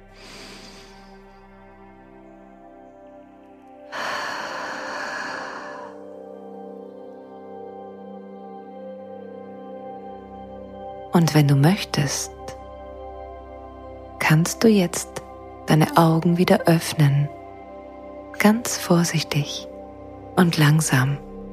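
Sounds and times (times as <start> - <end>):
deep, long, slow breath during guided relaxation: 0.0 - 1.6, 3.9 - 6.2
calm sustained tonal music: 0.0 - 21.5
speech: 11.2 - 12.4, 14.3 - 17.4, 18.4 - 19.7, 20.4 - 21.3.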